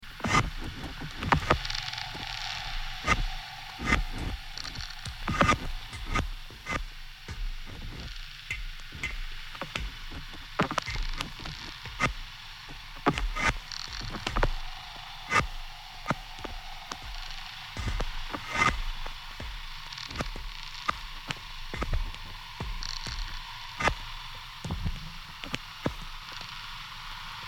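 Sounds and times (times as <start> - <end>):
slow creak: 0.2 - 26.6.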